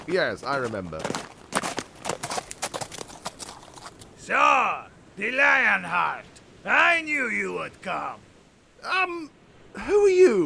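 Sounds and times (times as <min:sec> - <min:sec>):
speech: 0:00.0 - 0:01.3, 0:04.3 - 0:10.4
horses' hooves clip-clopping as riders set out: 0:00.0 - 0:04.2.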